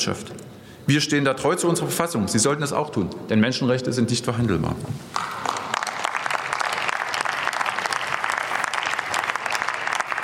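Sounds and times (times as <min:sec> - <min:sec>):
speech: 0:00.0 - 0:05.5
large crowd applauding in parliament: 0:05.1 - 0:10.2.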